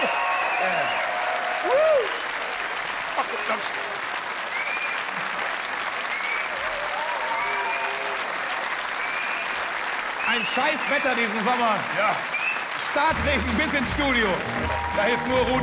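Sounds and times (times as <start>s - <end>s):
faint voices and whoops: 0.0s - 2.5s, 6.0s - 9.6s
audience applause: 0.0s - 15.6s
speech: 3.4s - 4.2s, 10.3s - 12.3s, 12.9s - 15.6s.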